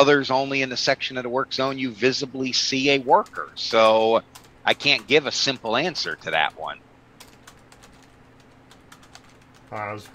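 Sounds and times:
speech: 0:00.0 - 0:06.9, 0:09.7 - 0:10.1
quiet rapid typing on a computer keyboard: 0:03.2 - 0:06.5, 0:07.2 - 0:10.1.

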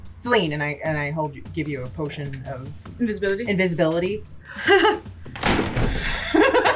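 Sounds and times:
speech: 0:00.2 - 0:05.2
laughter: 0:04.5 - 0:06.7
door slamming shut: 0:05.3 - 0:06.2.

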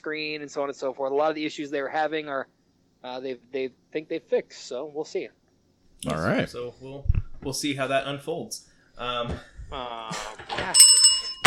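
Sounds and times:
speech: 0:00.0 - 0:05.4, 0:06.0 - 0:11.1
hand bell ringing: 0:10.7 - 0:11.4.

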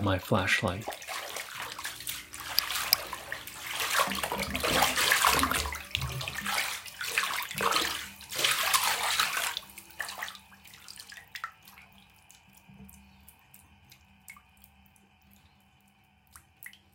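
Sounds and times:
speech: 0:00.0 - 0:01.0
water splashing and sloshing in a bathtub: 0:00.0 - 0:16.9.

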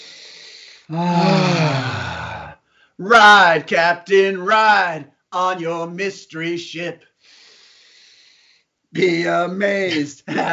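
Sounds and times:
deep breath: 0:00.0 - 0:03.0, 0:07.1 - 0:08.8
speech: 0:00.9 - 0:01.3, 0:03.0 - 0:07.1, 0:08.9 - 0:10.5.

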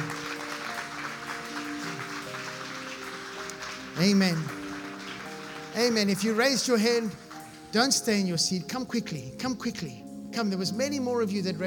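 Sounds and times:
audience applauding: 0:00.0 - 0:08.1
speech: 0:04.0 - 0:04.6, 0:05.8 - 0:11.6.

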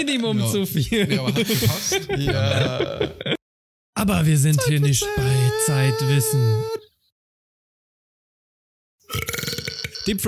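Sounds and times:
speech: 0:00.0 - 0:03.4, 0:04.0 - 0:06.8, 0:10.1 - 0:10.2
laughter: 0:00.8 - 0:03.4
loud drawn-out raspy burp: 0:09.1 - 0:10.2.

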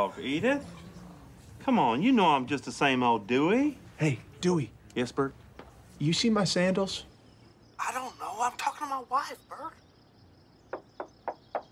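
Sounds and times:
speech: 0:00.0 - 0:00.8, 0:01.6 - 0:05.4, 0:06.0 - 0:07.1, 0:07.8 - 0:09.8
knocking on a door: 0:10.7 - 0:11.7.

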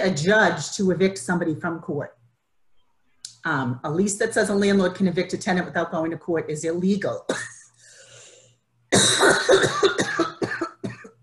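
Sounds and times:
speech: 0:00.0 - 0:02.2, 0:03.4 - 0:07.6
harsh chesty coughing: 0:07.3 - 0:07.8, 0:08.9 - 0:11.2.

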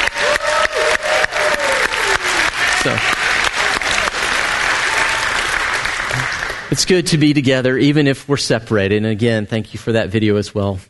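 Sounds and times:
crowd applauding: 0:00.0 - 0:07.1
speech: 0:02.8 - 0:03.2, 0:06.7 - 0:10.8.

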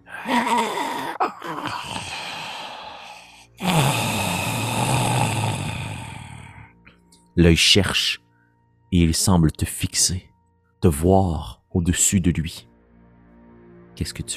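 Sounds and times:
single creature breathing heavily: 0:00.0 - 0:06.7
speech: 0:00.2 - 0:02.0, 0:07.4 - 0:08.2, 0:08.9 - 0:12.7, 0:14.0 - 0:14.3.

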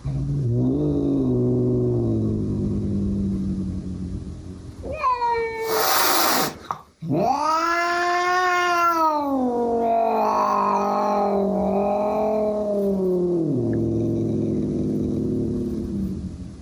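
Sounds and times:
cats growling: 0:00.0 - 0:04.2, 0:04.8 - 0:16.6
angry cats yowling and caterwauling: 0:04.9 - 0:13.2
cat hissing: 0:05.5 - 0:09.4, 0:10.0 - 0:16.1.

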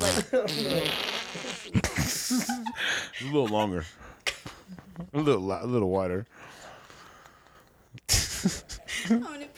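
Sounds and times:
person blowing a raspberry to mimic a fart: 0:00.0 - 0:01.8
vocal bursts: 0:00.0 - 0:02.3
speech: 0:00.2 - 0:01.4, 0:03.2 - 0:04.0, 0:04.7 - 0:06.5, 0:08.4 - 0:09.3.

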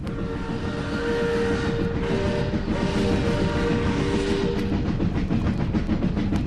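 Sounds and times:
train roaring out of a tunnel: 0:00.0 - 0:06.4.

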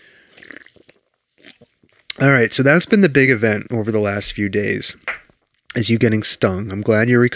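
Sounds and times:
person sipping seltzer: 0:00.0 - 0:05.2
slurp and gulping swallow: 0:00.0 - 0:05.2
small mouth sound: 0:00.2 - 0:02.4
speech: 0:02.2 - 0:05.1, 0:05.8 - 0:07.3.

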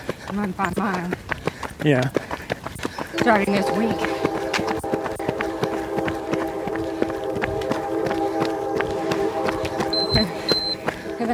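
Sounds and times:
speech: 0:00.3 - 0:02.2, 0:03.2 - 0:04.1
train passing: 0:03.1 - 0:11.3.

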